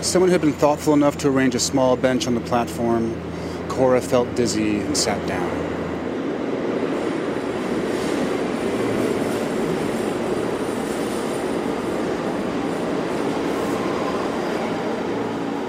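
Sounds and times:
speech: 0:00.0 - 0:05.8
train rumbling past on rails: 0:00.0 - 0:15.6.

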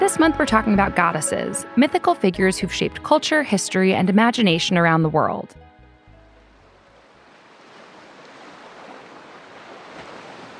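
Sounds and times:
speech: 0:00.1 - 0:05.6
stormy sea waves crashing against the side of a ship in a storm: 0:07.2 - 0:10.5.

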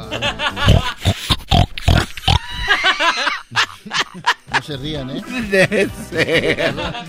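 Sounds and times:
laughter: 0:00.0 - 0:01.3, 0:02.4 - 0:07.0
person imitating a pig oinking and grunting: 0:00.6 - 0:02.9
speech: 0:04.7 - 0:07.0.

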